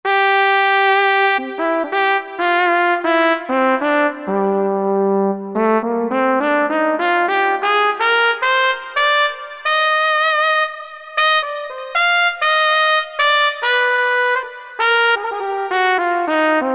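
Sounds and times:
trumpet playing legato: 0.1s - 16.7s.

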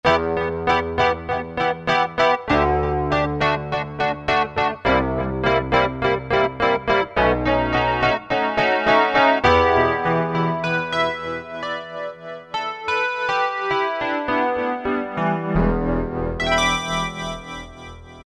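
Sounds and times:
Wurlitzer electric piano preset on a synthesizer: 0.0s - 18.2s.

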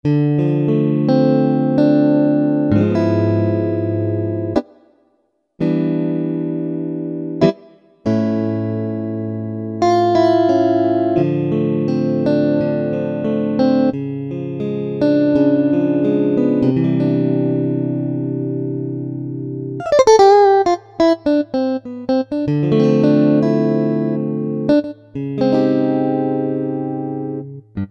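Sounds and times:
clean electric guitars: 0.0s - 4.7s, 5.6s - 27.9s.

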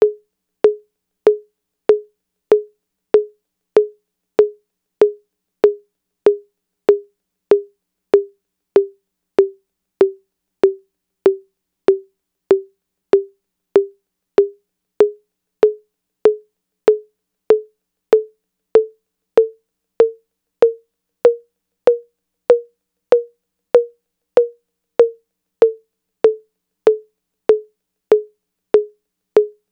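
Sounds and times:
Roland TR-808 drum machine high conga sample: 0.0s - 17.6s, 18.2s - 29.6s.

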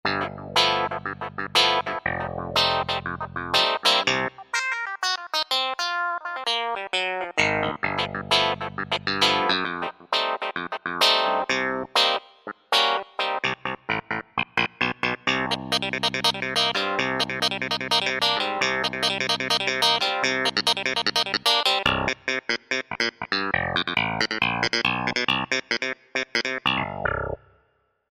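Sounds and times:
clavinet patch with wah-wah on a synthesizer: 0.1s - 27.4s.

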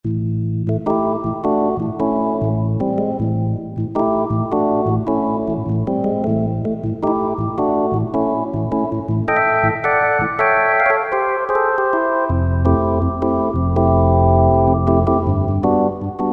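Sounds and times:
rock keyboards three bar direct: 0.7s - 16.3s.

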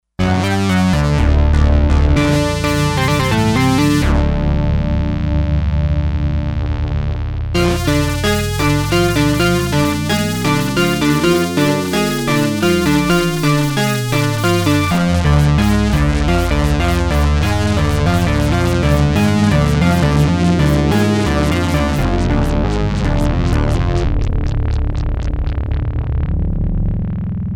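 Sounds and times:
synthesizer stack: 0.2s - 27.4s.

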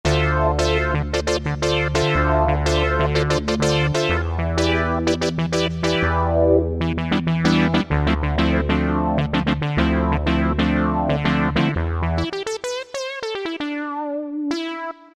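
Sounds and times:
funky analog Yamaha PSR-3000 keyboard brass voice: 0.0s - 12.4s, 13.0s - 15.1s.

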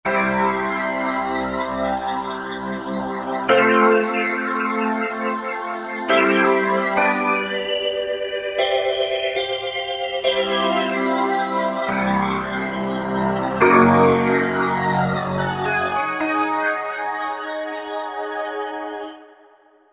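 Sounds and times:
optical organ patch on synthesizer: 0.1s - 19.1s.

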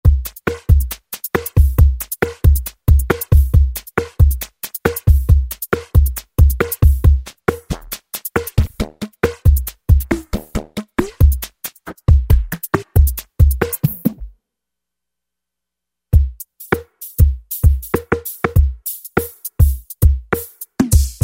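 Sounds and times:
synthesizer hard break drum kit factory patch: 0.0s - 14.3s, 16.2s - 21.2s.

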